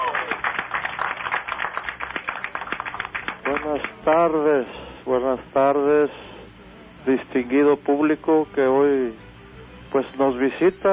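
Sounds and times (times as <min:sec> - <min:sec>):
audience applauding in Monterrey: 0:00.0 - 0:04.0
speech: 0:03.5 - 0:06.3, 0:07.0 - 0:09.2, 0:09.9 - 0:10.9.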